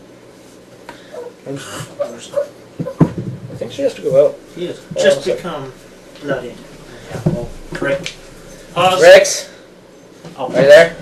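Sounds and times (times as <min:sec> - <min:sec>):
dog whimpering and crying in high whining bursts: 0:01.1 - 0:03.1
speech: 0:01.4 - 0:03.0, 0:03.7 - 0:08.2, 0:08.8 - 0:09.5, 0:10.3 - 0:11.0.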